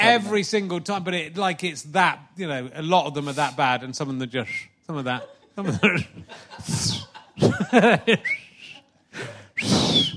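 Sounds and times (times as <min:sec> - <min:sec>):
speech: 0:00.2 - 0:08.4, 0:09.2 - 0:10.1
person chuckling: 0:05.6 - 0:09.3
person whistling short high gliding notes: 0:08.2 - 0:08.8, 0:09.6 - 0:10.1.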